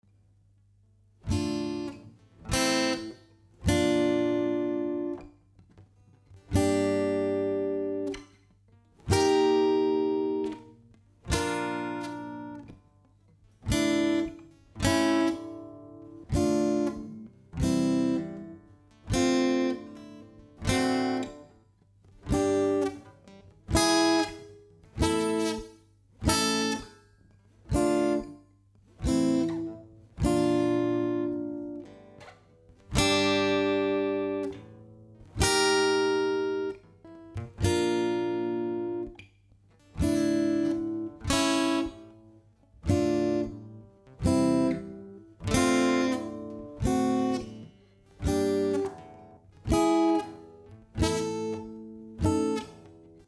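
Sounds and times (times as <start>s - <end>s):
sad guitar chords: 1.0s - 53.2s.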